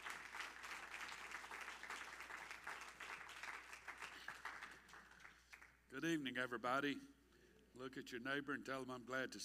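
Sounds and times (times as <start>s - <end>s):
crowd applauding: 0.0s - 5.8s
speech: 5.9s - 7.1s, 7.8s - 9.4s.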